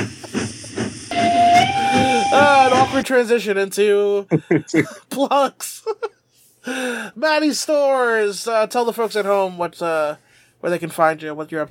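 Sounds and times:
steam train chugging: 0.0 - 3.0
steam train whistle: 0.8 - 3.0
speech: 3.0 - 11.6.

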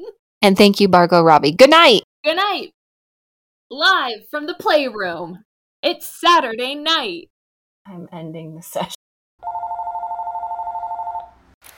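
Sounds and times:
speech: 0.0 - 2.8, 3.7 - 7.3, 7.9 - 9.6
telephone ringing with an electronic trill: 9.4 - 11.4.

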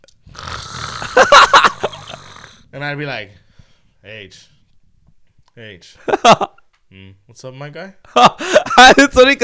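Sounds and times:
person imitating loud snoring: 0.2 - 2.7
speech: 2.8 - 3.4, 4.0 - 4.6, 5.6 - 9.4.

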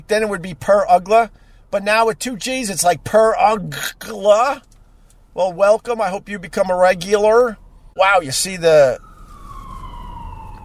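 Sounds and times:
low rumble of traffic: 0.0 - 10.6
speech: 0.1 - 4.7, 5.4 - 9.1
ambulance siren wailing: 5.5 - 10.6.

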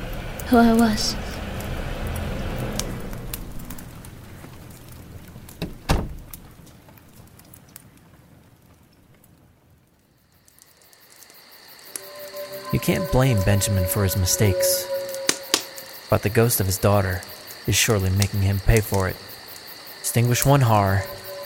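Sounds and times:
pattering rain: 0.0 - 12.0, 16.1 - 21.4
speech: 0.5 - 1.2, 12.9 - 14.9, 16.1 - 19.3, 20.1 - 21.2
door shutting with a solid thud: 5.6 - 6.3.

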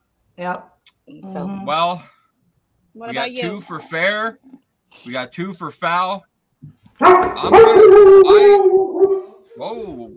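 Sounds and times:
speech: 0.4 - 2.2, 3.0 - 10.1
dog barking in a long howling vocalization: 7.0 - 9.4.

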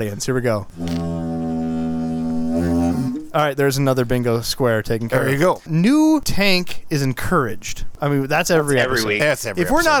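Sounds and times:
speech: 0.0 - 1.1, 2.6 - 9.9
didgeridoo deep buzzing drone: 0.7 - 3.4.

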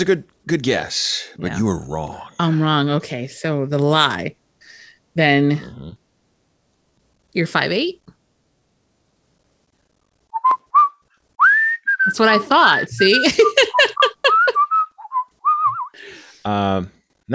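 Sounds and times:
speech: 0.0 - 4.4, 5.2 - 6.0, 7.4 - 8.0, 12.1 - 13.6, 16.4 - 17.3
person whistling a tune: 10.4 - 12.1, 14.3 - 16.0
people giggling: 12.9 - 14.8.

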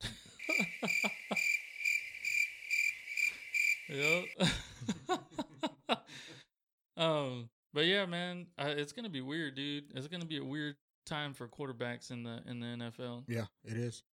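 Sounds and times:
laughter: 0.0 - 1.6, 4.0 - 6.3
crickets chirping: 0.4 - 4.4
speech: 3.9 - 4.6, 7.3 - 14.1.

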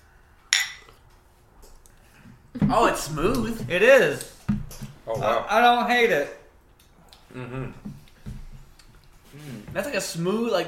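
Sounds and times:
beer glasses clinking in a toast: 0.5 - 1.0
speech: 2.6 - 6.4, 7.3 - 7.9, 9.4 - 10.6.

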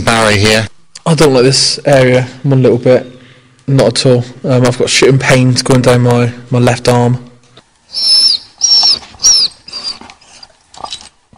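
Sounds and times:
speech: 0.1 - 3.1, 3.7 - 7.2, 7.9 - 8.2
dog whining: 7.9 - 11.2.

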